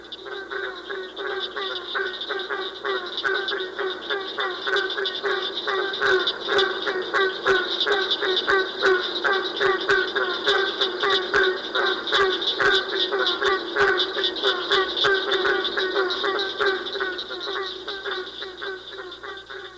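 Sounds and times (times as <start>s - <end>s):
barking treefrog chorus: 0.0s - 19.7s.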